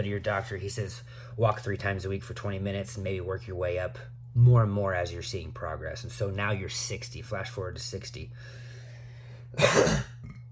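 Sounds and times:
speech: 0:00.0 - 0:08.6, 0:09.5 - 0:10.1
low steady hum: 0:00.0 - 0:10.5
guttural burp: 0:09.6 - 0:10.5
person coughing: 0:09.6 - 0:10.5.

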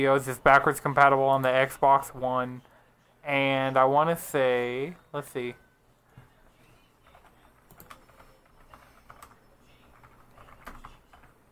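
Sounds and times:
speech: 0:00.0 - 0:05.6
typing on a computer keyboard: 0:07.0 - 0:11.5.

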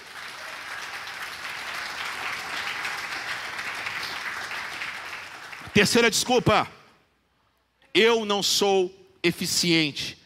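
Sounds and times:
congregation clapping: 0:00.0 - 0:06.7
speech: 0:05.8 - 0:06.8, 0:08.0 - 0:10.2.

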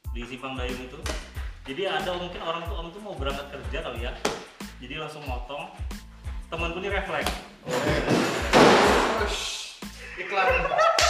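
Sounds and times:
speech: 0:00.2 - 0:08.3, 0:09.2 - 0:09.5, 0:10.2 - 0:10.9
door slamming shut: 0:07.2 - 0:09.3
laughter: 0:07.6 - 0:09.3, 0:10.0 - 0:11.0.

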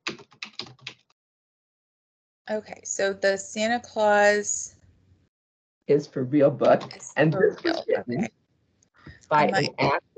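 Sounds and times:
computer keyboard typing: 0:00.0 - 0:01.1
speech: 0:02.5 - 0:04.8, 0:05.9 - 0:08.4, 0:09.3 - 0:10.1.

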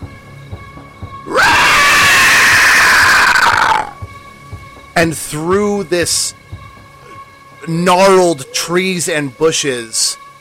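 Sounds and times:
monstrous creature screeching: 0:01.3 - 0:04.0
speech: 0:05.0 - 0:06.4, 0:07.7 - 0:10.2.

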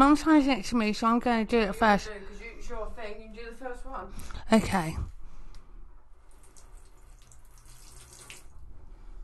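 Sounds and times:
speech: 0:00.0 - 0:05.1
water being poured in a steady stream: 0:06.3 - 0:08.7.

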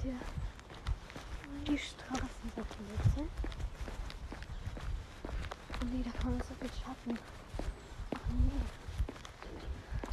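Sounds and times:
speech: 0:00.0 - 0:00.5, 0:01.6 - 0:03.6, 0:05.8 - 0:07.4
brisk footsteps of a person walking along a street on a cold day: 0:00.0 - 0:10.1.

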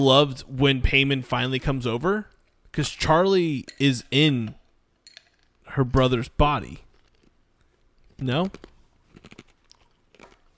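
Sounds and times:
speech: 0:00.0 - 0:04.6, 0:05.7 - 0:06.8, 0:08.2 - 0:08.7
chewing ice cubes: 0:06.8 - 0:10.5.

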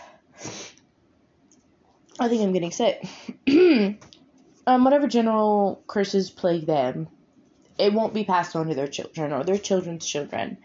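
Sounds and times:
stifled sneeze or sniff: 0:00.4 - 0:00.8
speech: 0:02.2 - 0:07.2, 0:07.8 - 0:10.6.

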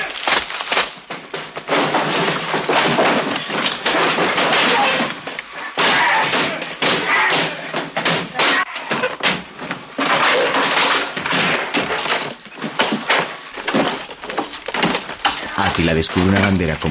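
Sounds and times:
furniture kicked, smashed and broken apart as a house is ransacked: 0:00.0 - 0:16.6
loud irregular wooden thuds, slams and cracks: 0:00.0 - 0:16.8
speech: 0:15.9 - 0:16.8.

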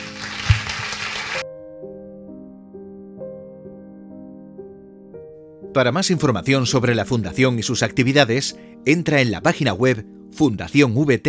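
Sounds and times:
audience applause: 0:00.0 - 0:01.4
calm sustained instrumental music: 0:00.0 - 0:11.2
speech: 0:05.8 - 0:11.2.

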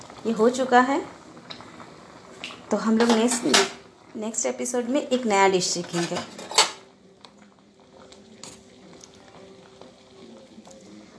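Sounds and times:
speech: 0:00.2 - 0:01.2, 0:02.7 - 0:06.4
metallic clank of a cooking pot of boiled oats: 0:03.0 - 0:03.8
softer clinks and light kitchen clatter: 0:05.8 - 0:06.8.

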